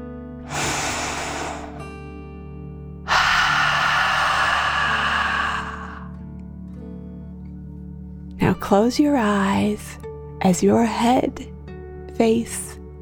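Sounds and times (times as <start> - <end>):
deep rushing inhale through the nose: 0.5 - 2.4, 3.1 - 6.2
longer louder breathy exhale through the mouth: 0.5 - 2.4, 3.1 - 6.2
speech: 8.6 - 11.5, 12.2 - 12.8.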